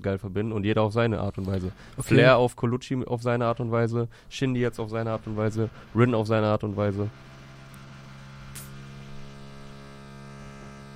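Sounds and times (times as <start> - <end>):
speech: 0.0 - 7.3
power drill drilling from the floor above: 1.2 - 2.4, 3.4 - 10.9.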